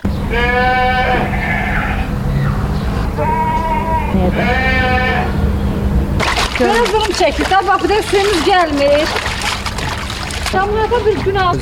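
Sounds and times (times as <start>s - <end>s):
constant low rumble of noise: 0.0s - 11.6s
livestock in sheds beside a five-story building bleating: 0.1s - 5.7s
speech: 4.2s - 4.8s, 6.6s - 9.3s, 10.5s - 11.6s.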